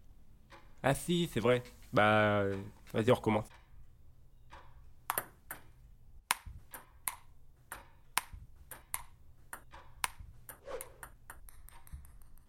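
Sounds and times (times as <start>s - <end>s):
speech: 0.8s - 3.6s
ping-pong ball bouncing in a rally during a game in a cellar: 4.6s - 12.4s.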